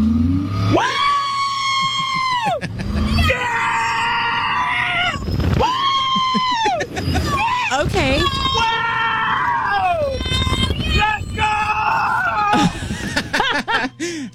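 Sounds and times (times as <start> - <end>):
steady low rumble of outdoor roller coaster ride: 0.0 - 14.3
riders screaming on an outdoor roller coaster: 0.6 - 13.9
laughter: 1.6 - 3.4, 5.9 - 7.8, 12.5 - 14.3.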